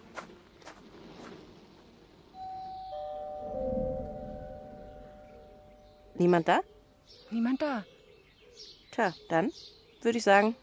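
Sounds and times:
doorbell chiming: 0:02.4 - 0:06.4
speech: 0:06.2 - 0:07.9, 0:08.6 - 0:10.6.

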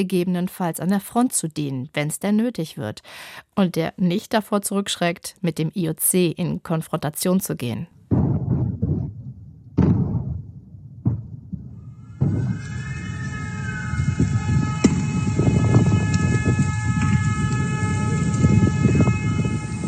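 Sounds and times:
speech: 0:00.0 - 0:08.3
sharp heavy thuds: 0:08.0 - 0:12.7
rumbling background: 0:08.0 - 0:19.8
air raid siren wailing in Ukraine: 0:11.7 - 0:19.8.

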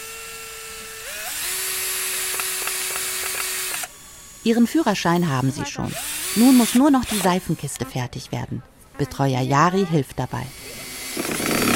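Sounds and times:
power drill whirring: 0:00.0 - 0:07.8, 0:10.5 - 0:11.7
speech: 0:04.4 - 0:10.6.

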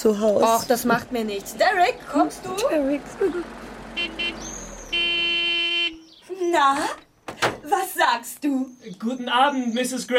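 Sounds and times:
speech: 0:00.0 - 0:04.6, 0:06.4 - 0:07.0, 0:07.7 - 0:10.1
car horn honking: 0:03.4 - 0:06.2.

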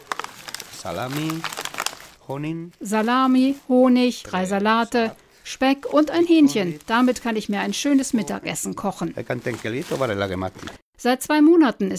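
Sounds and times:
bag of food crinkling as it is handed over: 0:00.0 - 0:03.7, 0:05.6 - 0:08.4, 0:09.0 - 0:10.8
speech: 0:00.8 - 0:01.6, 0:02.3 - 0:11.9.

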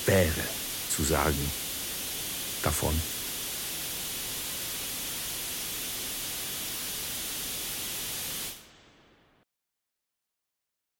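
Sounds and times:
radio static hiss: 0:00.0 - 0:08.8
speech: 0:00.1 - 0:01.6, 0:02.6 - 0:03.1.

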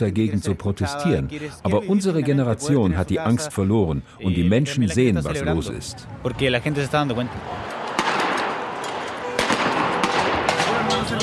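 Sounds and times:
speech: 0:00.0 - 0:07.8
constant roar of crowd noise at a street protest: 0:06.8 - 0:11.1
tear gas grenade exploding at a street protest: 0:07.4 - 0:11.2.

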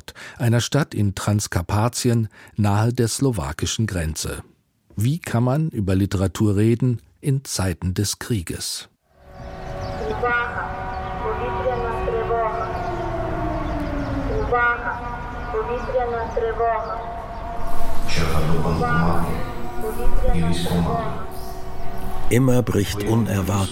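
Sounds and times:
speech: 0:00.4 - 0:10.7, 0:15.5 - 0:17.1, 0:18.1 - 0:21.4, 0:22.3 - 0:23.7
air raid siren wailing: 0:09.2 - 0:23.7.

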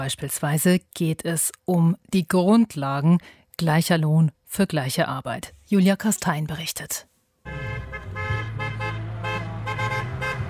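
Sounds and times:
speech: 0:00.0 - 0:07.6
car horn honking: 0:07.5 - 0:10.4.

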